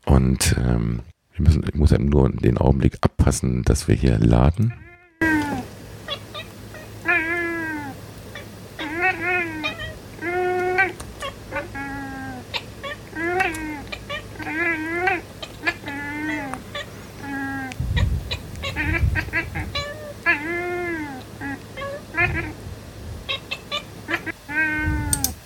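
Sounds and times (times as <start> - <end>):
speech: 0.1 - 4.8
two cats meowing back and forth: 4.7 - 22.6, 23.2 - 25.4.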